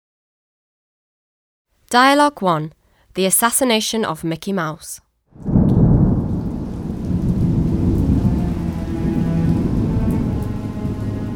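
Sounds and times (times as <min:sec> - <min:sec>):
speech: 0:01.9 - 0:05.6
deep low rumble: 0:05.4 - 0:11.3
heavy rain pouring: 0:05.4 - 0:11.3.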